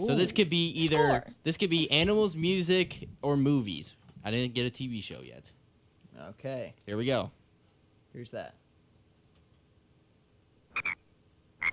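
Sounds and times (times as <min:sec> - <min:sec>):
speech: 0:00.0 - 0:05.6, 0:06.2 - 0:07.4, 0:08.2 - 0:08.6, 0:10.8 - 0:11.0
frog croaking in short raspy double bursts: 0:10.7 - 0:11.0.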